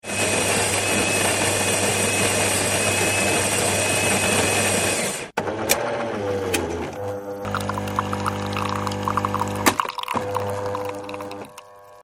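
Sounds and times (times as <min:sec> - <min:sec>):
household espresso machine: 0:00.0 - 0:12.0.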